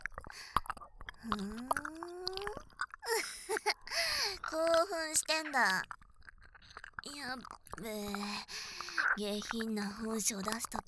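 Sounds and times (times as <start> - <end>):
loud wet open-mouthed chewing of food: 0.0 - 10.8
speech: 1.2 - 1.8, 4.5 - 6.0, 7.0 - 10.8
brief rising hum of voice: 1.2 - 3.6.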